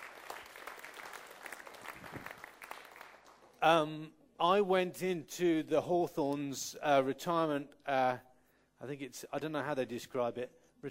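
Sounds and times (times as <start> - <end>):
small group clapping for a speaker: 0.0 - 3.6
speech: 3.6 - 10.8.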